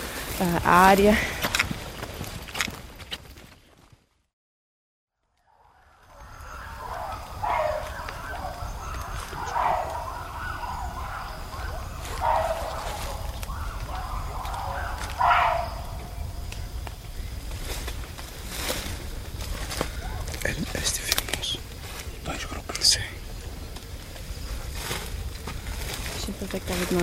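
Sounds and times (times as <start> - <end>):
forest noise: 0.0 - 4.0, 5.2 - 27.0
speech: 0.4 - 1.4
chimpanzee alarm calls: 6.1 - 16.4, 19.8 - 20.4.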